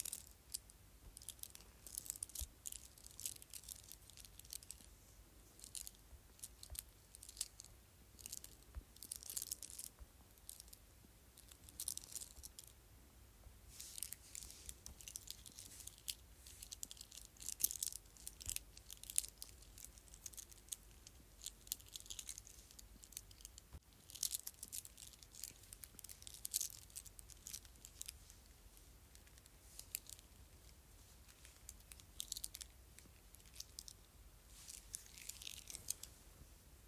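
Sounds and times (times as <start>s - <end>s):
beads on a bracelet clicking and rattling: 0.0s - 4.9s, 5.5s - 10.8s, 11.4s - 12.7s, 13.8s - 36.1s
quiet low hum: 0.0s - 36.8s.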